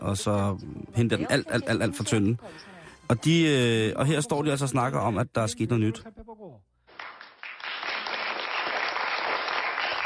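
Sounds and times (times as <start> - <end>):
speech: 0.0 - 6.2
studio audience applause on a Korean morning TV show: 6.9 - 10.0.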